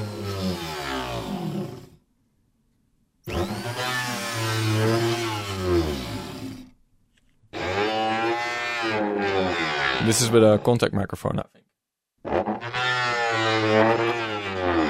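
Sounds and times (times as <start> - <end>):
electric grinder working on wood: 0.0 - 2.0, 3.3 - 6.7, 7.6 - 10.2, 12.6 - 14.8
speech: 10.1 - 11.7.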